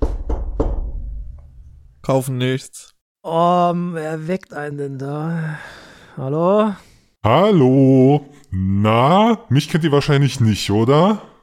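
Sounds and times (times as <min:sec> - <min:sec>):
firm knocks on a wooden door at a cinema daycare: 0:00.0 - 0:01.2
speech: 0:02.1 - 0:11.3.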